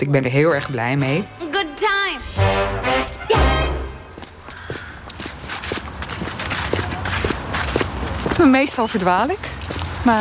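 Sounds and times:
speech: 0.0 - 3.4, 8.4 - 10.1
footsteps crunching on an outdoor park path: 4.0 - 10.1.

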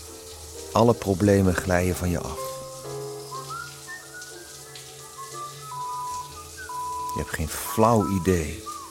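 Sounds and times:
shower running with a rushing hiss of water: 0.0 - 8.8
speech: 0.7 - 2.5, 7.2 - 8.7
person whistling a wandering melody: 3.4 - 4.5, 5.2 - 7.3.

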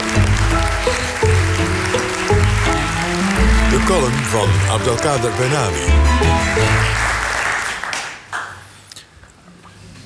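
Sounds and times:
audience applause: 0.0 - 8.7
speech: 3.9 - 7.0.

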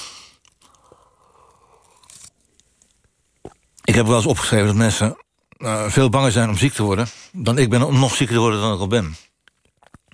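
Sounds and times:
person sipping a drink: 0.0 - 2.6
speech: 4.0 - 9.3.

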